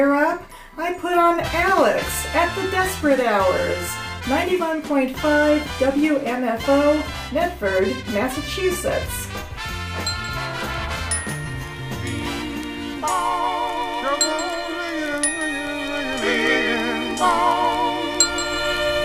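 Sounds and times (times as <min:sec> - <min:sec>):
speech: 0:00.0 - 0:09.2
bells ringing: 0:10.0 - 0:13.2, 0:14.1 - 0:19.0
sustained music with wavering vibrato-like tones: 0:10.0 - 0:19.0.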